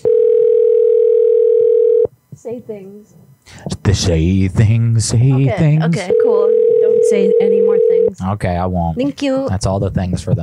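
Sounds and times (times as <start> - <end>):
telephone ringing tone: 0.0 - 2.1, 6.1 - 8.2
speech: 2.5 - 10.4.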